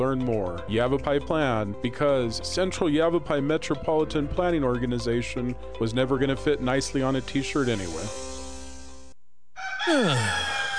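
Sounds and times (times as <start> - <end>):
speech: 0.0 - 8.3, 9.9 - 10.5
rooster crowing: 9.6 - 10.7.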